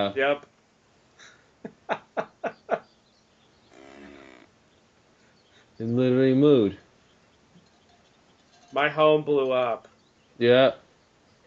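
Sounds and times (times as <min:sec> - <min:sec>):
speech: 0:00.0 - 0:00.5, 0:05.8 - 0:06.8, 0:08.7 - 0:10.8
faint hiss: 0:00.0 - 0:11.4
laughter: 0:01.6 - 0:02.8
cow mooing: 0:03.7 - 0:04.5.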